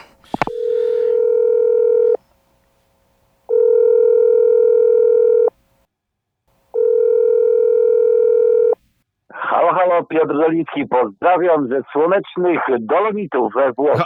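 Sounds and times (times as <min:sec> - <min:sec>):
telephone ringback tone while placing a call: 0:00.3 - 0:02.2, 0:03.5 - 0:05.5, 0:06.8 - 0:08.8
speech: 0:10.1 - 0:14.0.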